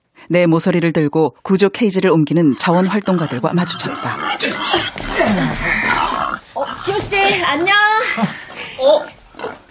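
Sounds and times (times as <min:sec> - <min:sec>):
speech: 0:00.3 - 0:06.0, 0:06.6 - 0:09.6
young wild boar piglet grunting and squealing: 0:02.4 - 0:07.4, 0:08.6 - 0:09.6.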